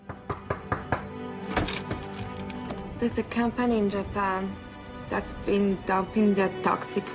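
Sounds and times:
steady knocking on a door: 0.0s - 2.0s
brief rattling clatter: 1.5s - 2.9s
speech: 3.0s - 7.1s.

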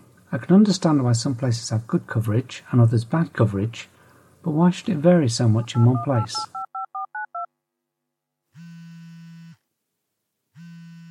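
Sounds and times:
speech: 0.3s - 6.6s
touch-tone telephone keypad beeps: 5.6s - 7.5s.

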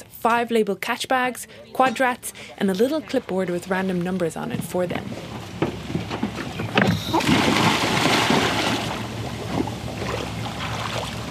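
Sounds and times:
speech: 0.2s - 5.3s
water rushing around a boat hull: 3.7s - 11.2s
buoy dropped over boat side splashing into water: 5.2s - 11.2s.

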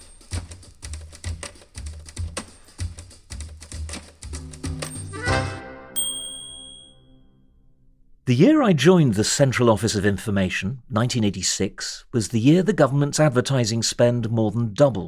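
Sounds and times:
typewriter bell ding: 0.0s - 0.5s, 4.8s - 5.4s, 6.0s - 7.2s
typewriter keys clacking with dull thumps: 0.0s - 5.2s
speech: 8.3s - 15.0s.

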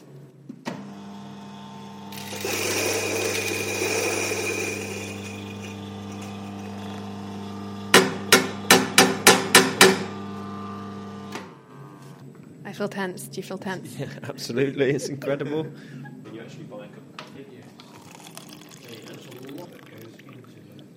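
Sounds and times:
coffee grinder grinding coffee beans for a paper filter: 0.9s - 11.4s, 17.8s - 20.0s
sharp knocks: 7.9s - 10.1s
speech: 12.8s - 16.0s.

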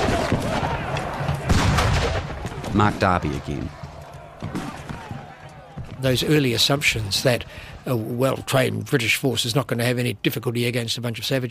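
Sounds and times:
cannon booms of a bombardment of fortifications: 0.0s - 3.2s
rapid gunfire crackling in a battle: 0.0s - 5.9s
speech: 2.8s - 3.8s, 6.0s - 11.4s.

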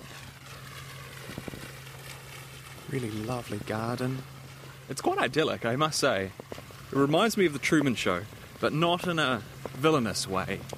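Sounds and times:
garden fountains in a village water feature spraying jets of water: 0.0s - 10.7s
low hum: 0.0s - 10.7s
speech: 2.9s - 4.3s, 4.9s - 10.7s.

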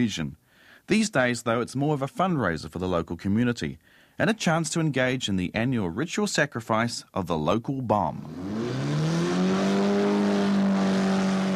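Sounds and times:
speech: 0.0s - 8.8s
car engine drained of oil revving: 8.2s - 11.5s.

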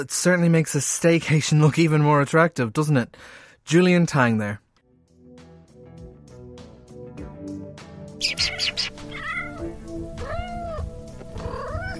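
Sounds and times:
speech: 0.0s - 4.6s
soft musical backdrop: 4.8s - 11.9s
kitten meowing: 8.2s - 11.9s.

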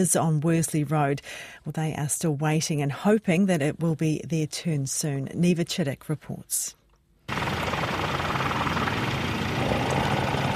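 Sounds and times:
speech: 0.0s - 6.8s
helicopter flying over a house during a fire: 7.3s - 10.5s.

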